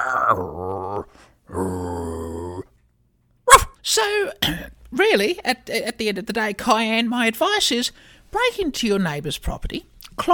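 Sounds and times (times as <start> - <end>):
man growling like a dog: 0.0 - 2.7
speech: 0.3 - 2.2, 3.8 - 10.3.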